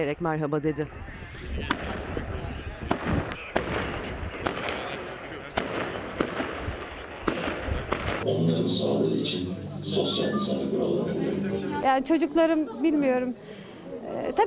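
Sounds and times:
speech: 0:00.0 - 0:02.0, 0:08.2 - 0:13.5, 0:14.2 - 0:14.4
fireworks banging over the city: 0:01.7 - 0:02.2, 0:02.9 - 0:09.3
dense rumbling backdrop: 0:08.1 - 0:12.6.

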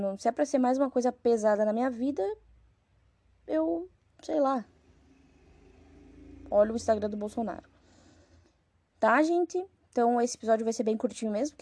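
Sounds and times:
speech: 0:00.0 - 0:02.5, 0:03.5 - 0:04.7, 0:06.5 - 0:07.7, 0:09.0 - 0:11.6
motorcycle passing outside: 0:04.7 - 0:08.3.

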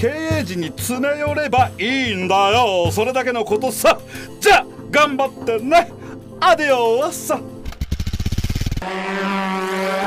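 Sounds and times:
speech: 0:00.0 - 0:07.5, 0:08.8 - 0:10.0
motorcycle engine revving as the bike pulls off: 0:07.6 - 0:10.0.

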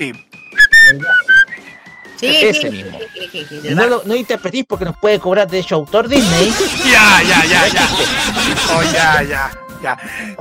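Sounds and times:
speech: 0:00.0 - 0:00.3, 0:00.9 - 0:01.3, 0:02.2 - 0:10.4
whistled melody from a cartoon short: 0:00.0 - 0:02.2
laughter: 0:06.2 - 0:09.4.

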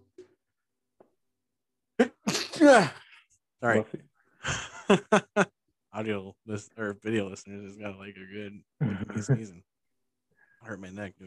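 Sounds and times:
loud sneeze: 0:02.0 - 0:03.1
speech: 0:02.6 - 0:03.0, 0:03.6 - 0:09.7, 0:10.6 - 0:11.2.

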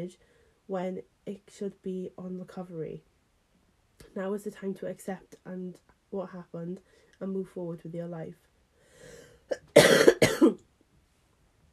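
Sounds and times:
speech: 0:00.0 - 0:03.1, 0:04.1 - 0:08.5
person coughing: 0:09.5 - 0:10.6.

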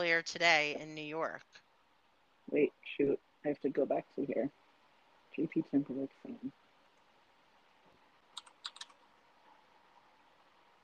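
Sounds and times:
speech: 0:00.0 - 0:01.6, 0:02.5 - 0:04.6, 0:05.4 - 0:06.6
quiet hiss: 0:00.0 - 0:10.8
typing on a computer keyboard: 0:08.3 - 0:09.0.

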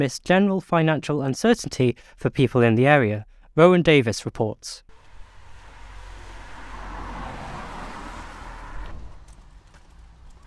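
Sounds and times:
speech: 0:00.0 - 0:04.9
road traffic hum at a town bus stop: 0:04.9 - 0:10.4
vehicle passing: 0:04.9 - 0:10.4
faint clatter: 0:08.8 - 0:10.4.

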